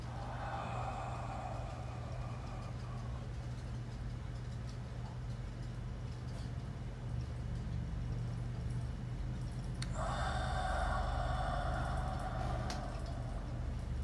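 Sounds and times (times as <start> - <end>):
drawn-out airy exhale during breathing exercise: 0.0 - 3.3, 9.8 - 14.0
gentle breath in during breathing exercise: 0.0 - 3.8, 9.8 - 14.0
steady low hum: 0.0 - 14.0.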